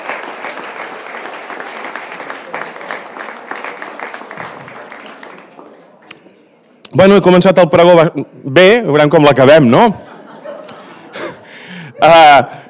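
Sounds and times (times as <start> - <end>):
crowd applauding at a grape-harvest wine festival: 0.0 - 5.8
speech: 7.0 - 10.0
laughter: 9.8 - 12.6.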